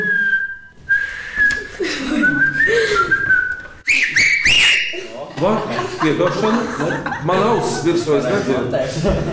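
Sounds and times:
person whistling: 0.0s - 5.0s
laughter: 1.6s - 3.5s, 4.7s - 9.3s
speech: 5.4s - 9.3s.

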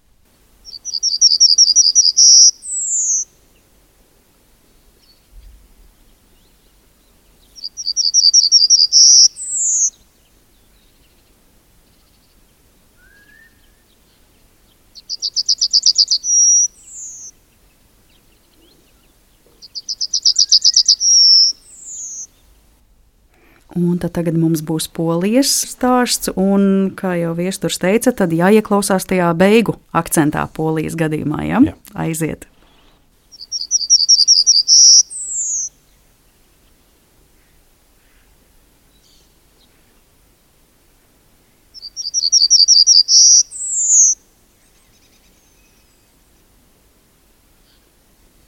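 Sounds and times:
yellowhammer singing in Latvia: 0.6s - 3.7s, 4.8s - 22.6s, 23.7s - 35.8s, 41.8s - 46.2s
speech: 23.8s - 32.5s.

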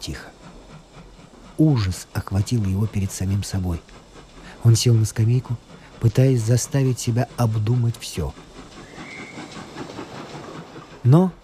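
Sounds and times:
speech: 0.0s - 0.3s, 1.6s - 4.0s, 4.6s - 8.5s, 11.0s - 11.4s
train arriving: 0.0s - 11.4s
train wheels clattering on rails: 0.0s - 11.4s
thin high squeal: 8.8s - 9.8s.

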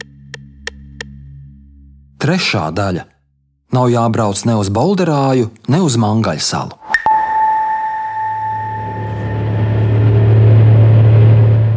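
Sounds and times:
speech: 2.2s - 3.1s, 3.7s - 6.9s
faint high whine: 6.9s - 11.7s
heavy truck engine rumbling at construction site: 8.9s - 11.7s.

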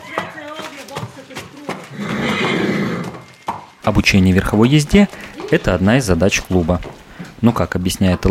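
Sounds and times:
horse whinnying: 1.9s - 3.4s
speech: 3.9s - 8.2s.

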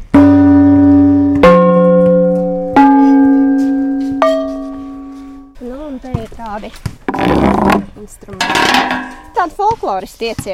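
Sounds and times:
loud metallic gong strikes with rich sustained tones: 0.0s - 5.6s
speech: 6.5s - 10.5s.

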